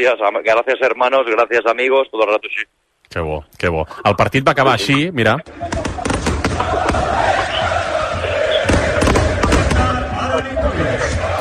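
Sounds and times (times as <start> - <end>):
speech: 0.0 - 6.1
arena crowd singing and chanting at the end of a match: 5.5 - 11.3
fireworks bangs set off from the top of the pavilion: 5.6 - 10.0.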